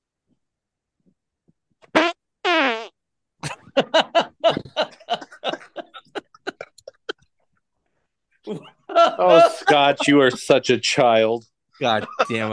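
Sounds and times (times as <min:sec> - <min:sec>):
fart noises: 0:01.9 - 0:03.0
laughter: 0:03.4 - 0:07.3, 0:08.5 - 0:10.8, 0:11.8 - 0:12.5
speech: 0:09.2 - 0:12.5.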